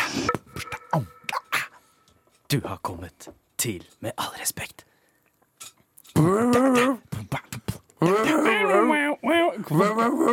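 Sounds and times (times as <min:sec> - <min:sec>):
person imitating yelping dog barks: 0:00.6 - 0:01.8, 0:06.2 - 0:10.3
speech: 0:02.5 - 0:04.9, 0:06.2 - 0:07.1, 0:08.0 - 0:10.3.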